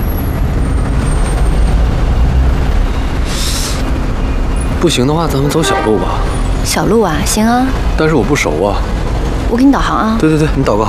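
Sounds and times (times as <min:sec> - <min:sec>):
idling traffic engines rumbling in a traffic jam: 0:00.0 - 0:10.8
bus air brakes releasing: 0:03.2 - 0:03.9
speech: 0:04.8 - 0:10.8.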